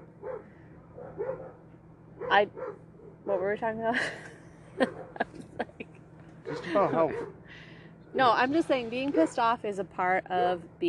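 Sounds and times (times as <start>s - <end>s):
low steady hum: 0.0s - 10.8s
dog barking: 0.2s - 1.6s, 2.2s - 3.6s, 6.4s - 7.4s
speech: 2.3s - 5.8s, 6.5s - 7.4s, 8.1s - 10.8s
laughter: 3.9s - 5.8s.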